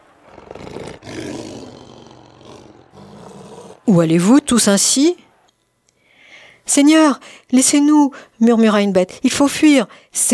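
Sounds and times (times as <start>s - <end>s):
lion roaring: 0.0s - 3.9s
speech: 3.9s - 5.2s, 6.7s - 10.3s.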